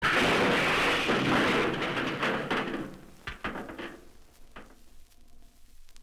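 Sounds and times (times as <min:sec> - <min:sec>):
junk crash: 0:00.0 - 0:04.8.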